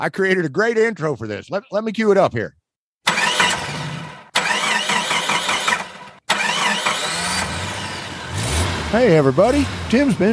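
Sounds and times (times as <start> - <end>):
speech: 0.0 - 2.6, 8.9 - 10.3
car engine cranking and trying to start: 3.1 - 10.3.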